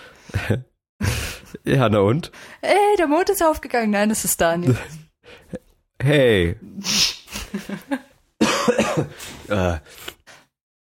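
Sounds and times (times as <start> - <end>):
speech: 0.4 - 0.7, 1.6 - 8.0, 9.0 - 10.0
laughter: 7.3 - 8.1
person coughing: 8.4 - 9.5.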